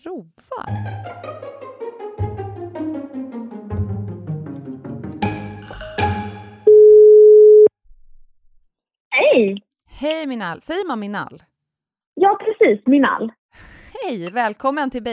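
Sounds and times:
speech: 0.1 - 1.2, 9.4 - 11.5, 12.6 - 15.1
telephone tone while a call is placed: 6.7 - 7.7.

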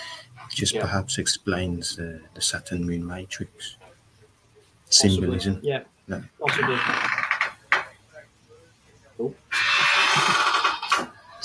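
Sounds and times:
speech: 0.6 - 3.8, 4.9 - 7.1, 9.2 - 9.6, 10.2 - 10.5
door creaking open: 6.4 - 8.0, 9.5 - 11.4.

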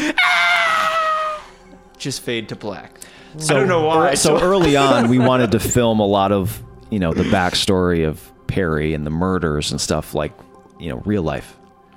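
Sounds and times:
voice imitating a high-pitched scream: 0.2 - 1.5
speech: 2.0 - 11.6
laughter: 3.6 - 6.1, 7.0 - 7.6.

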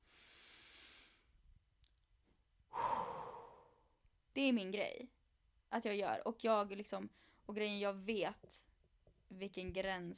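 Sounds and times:
deep breathing in and out: 0.0 - 1.4, 2.7 - 3.9
speech: 4.4 - 8.7, 9.3 - 10.1.

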